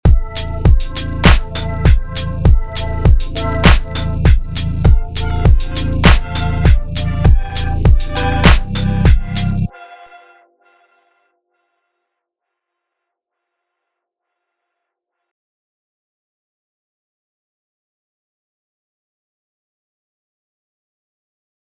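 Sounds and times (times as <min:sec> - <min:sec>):
synth with LFO modulation and automation: 0:00.1 - 0:10.4.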